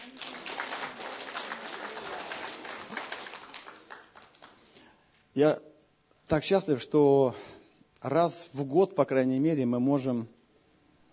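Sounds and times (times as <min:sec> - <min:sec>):
large crowd clapping: 0:00.0 - 0:04.8
speech: 0:05.4 - 0:05.7, 0:06.3 - 0:10.4.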